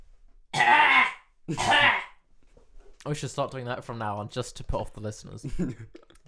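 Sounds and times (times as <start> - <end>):
person clearing throat with deliberate coughs: 0.6 - 2.2
speech: 1.5 - 1.9, 3.0 - 6.2.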